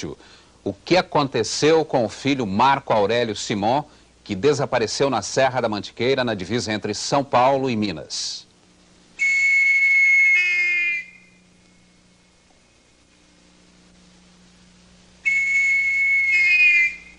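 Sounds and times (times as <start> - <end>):
speech: 0.0 - 8.5
faint hum: 0.0 - 17.1
shrill whistle blasts: 9.2 - 11.5, 15.2 - 17.1.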